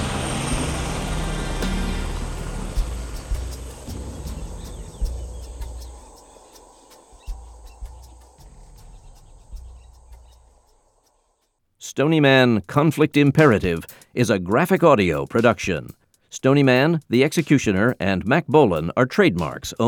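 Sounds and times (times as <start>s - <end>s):
helicopter lifting off: 0.0s - 10.6s
speech: 11.9s - 19.8s.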